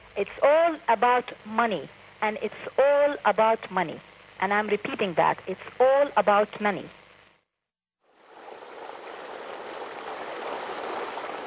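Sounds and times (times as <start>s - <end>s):
speech: 0.2s - 7.0s
new water pump gushing water onto a small rice and wheat plot: 8.1s - 11.4s.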